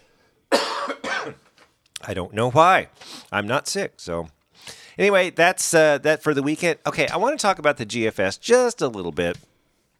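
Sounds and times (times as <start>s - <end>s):
harsh coughs: 0.5s - 1.5s
speech: 2.1s - 9.5s.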